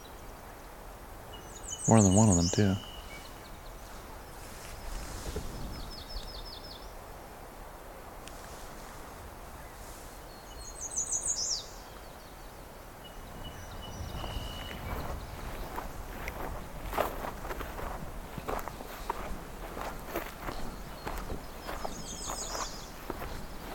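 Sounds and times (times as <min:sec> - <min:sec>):
steady rumbling outdoor background: 0:00.0 - 0:23.7
song sparrows singing trilling phrases: 0:01.3 - 0:03.8, 0:10.3 - 0:23.7
speech: 0:01.8 - 0:02.9
soft footsteps: 0:03.8 - 0:05.9, 0:14.0 - 0:23.7.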